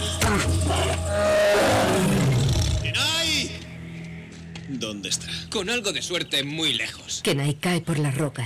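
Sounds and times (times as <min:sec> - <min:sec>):
bear roaring: 0:00.2 - 0:02.8
speech: 0:04.9 - 0:08.4.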